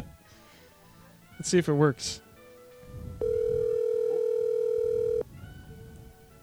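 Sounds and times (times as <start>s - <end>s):
speech: 1.4s - 2.2s
hotline telephone ringing tone through speakers: 3.2s - 5.2s.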